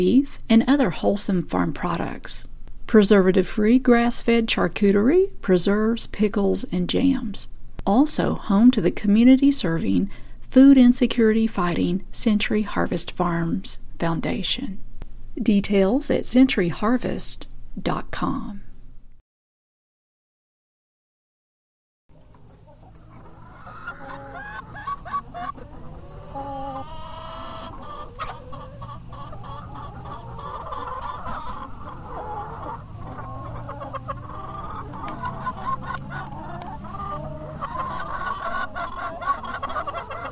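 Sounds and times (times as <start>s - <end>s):
speech: 0.0s - 14.8s, 15.4s - 18.6s
rooster crowing and clucking: 22.1s - 40.2s.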